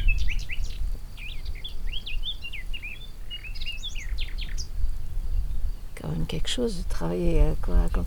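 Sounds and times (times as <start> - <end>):
birds singing outdoors on a mountain ridge: 0.0 - 5.9
speech: 6.3 - 8.0.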